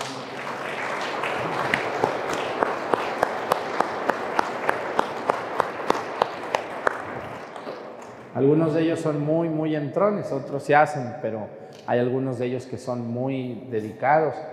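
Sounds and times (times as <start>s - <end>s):
room full of people applauding: 0.0s - 8.2s
speech: 8.4s - 14.5s.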